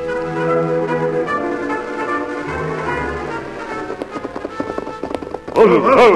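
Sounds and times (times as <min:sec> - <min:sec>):
sustained dramatic music: 0:00.0 - 0:05.8
horse hoofbeats galloping: 0:01.5 - 0:06.1.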